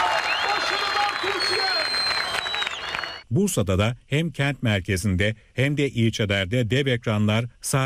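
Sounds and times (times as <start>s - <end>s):
applause: 0.0s - 3.2s
large crowd roaring and cheering: 0.0s - 3.2s
whistles: 0.2s - 3.2s
speech: 3.3s - 7.8s.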